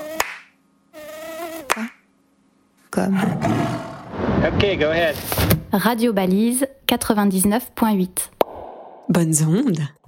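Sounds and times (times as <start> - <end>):
tiger mosquito buzzing: 0.0 - 2.1
sharp sudden slaps: 0.2 - 0.6
speech: 3.0 - 3.8, 4.4 - 8.3, 9.1 - 10.0.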